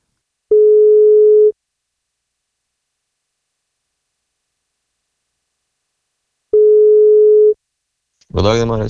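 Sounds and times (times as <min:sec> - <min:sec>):
telephone ringback tone during outgoing call: 0:00.5 - 0:01.6, 0:06.6 - 0:07.6.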